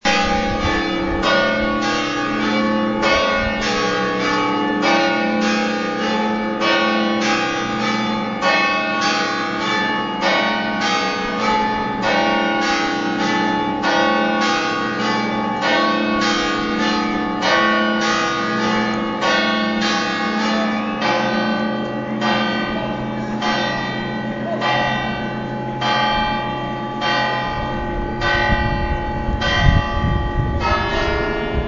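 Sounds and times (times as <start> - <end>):
cathedral bells ringing: 0.0 - 31.6.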